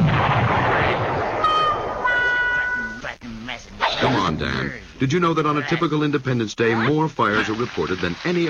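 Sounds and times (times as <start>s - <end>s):
consumer fireworks exploding with blasts and crackling: 0.0s - 2.3s
shrill whistling tones of consumer fireworks: 0.0s - 3.0s
speech: 4.3s - 8.4s.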